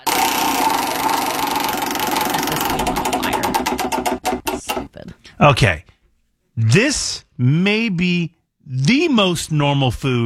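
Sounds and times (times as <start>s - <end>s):
prize wheel spun clicking: 0.0s - 5.2s
speech: 5.4s - 5.9s, 6.6s - 10.2s.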